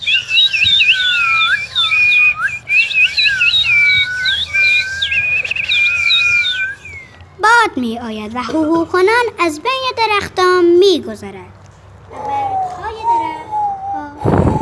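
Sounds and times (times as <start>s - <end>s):
nightingale singing melodic whistled warbles: 0.0s - 7.6s, 12.4s - 14.5s
speech: 7.7s - 12.3s.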